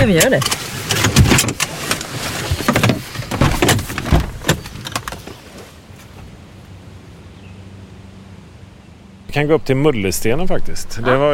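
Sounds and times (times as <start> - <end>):
speech: 0.0 - 0.7, 9.4 - 11.3
thumps: 0.0 - 5.4
car door clunking as people climb out of a car: 0.0 - 6.4
rustling and shuffling movement of people climbing out of a car: 0.0 - 7.0.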